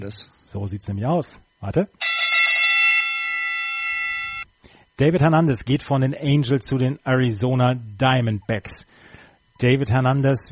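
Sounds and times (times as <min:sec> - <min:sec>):
speech: 0:00.0 - 0:02.1, 0:05.0 - 0:10.4
bright bell rung to announce a baseball trade: 0:02.0 - 0:04.4.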